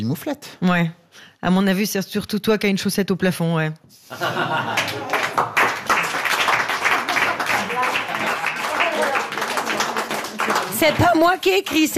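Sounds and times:
speech: 0.0s - 5.0s, 10.8s - 11.9s
laughter: 4.1s - 5.5s
audience applauding for a performer: 4.4s - 11.9s.

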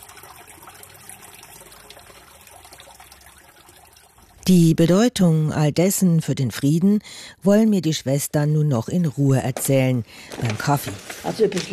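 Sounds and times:
water trickling from a fountain with three inward and three outward jets: 0.0s - 6.8s
speech: 4.5s - 11.7s.

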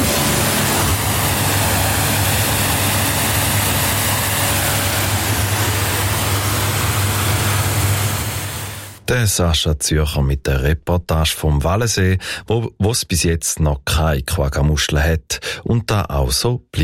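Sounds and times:
pressure washer engine droning: 0.0s - 9.0s
pressure washer spraying water on a motorboat: 0.0s - 9.0s
speech: 9.1s - 16.8s.

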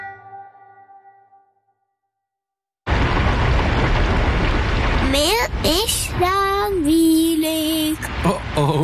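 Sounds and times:
low thunder rumble: 2.9s - 6.2s
heavy rain: 2.9s - 8.8s
child's whiny sing-song voice: 5.7s - 8.1s.

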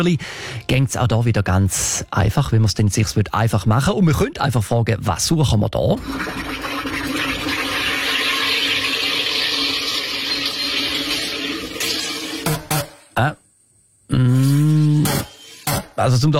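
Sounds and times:
speech: 0.0s - 6.6s, 13.2s - 13.4s, 16.0s - 16.3s
home soda maker carbonating water: 5.9s - 12.9s
brief vocal sound: 14.1s - 15.3s.

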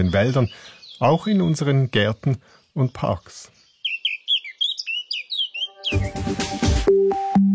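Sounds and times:
speech: 0.0s - 3.6s, 5.9s - 7.3s
Eurasian blackcap singing a fluty warbling phrase: 0.0s - 6.3s
instrumental music with sustained electronic tones: 5.7s - 7.5s.

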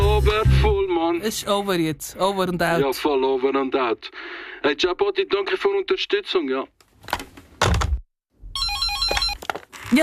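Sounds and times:
speech: 0.2s - 7.2s
electronic telephone ringtone: 8.6s - 9.4s.

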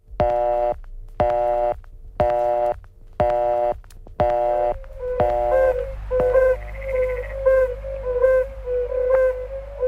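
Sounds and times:
low hum: 0.0s - 9.8s
chorus of overlapping hooting toad calls: 4.5s - 9.8s
yellow-bellied toads calling with buzzy tone bursts: 4.8s - 9.5s.

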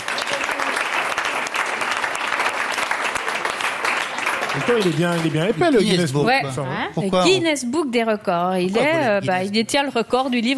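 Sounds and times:
steady audience applause: 0.0s - 6.0s
speech: 4.6s - 10.5s.

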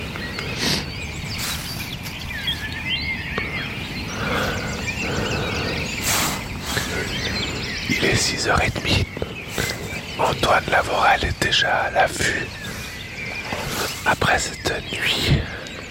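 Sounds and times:
dawn chorus of thrushes and other birds: 0.0s - 15.8s
steady outdoor hush: 0.0s - 15.8s
speech: 8.2s - 9.2s, 10.2s - 12.6s, 14.3s - 15.6s.

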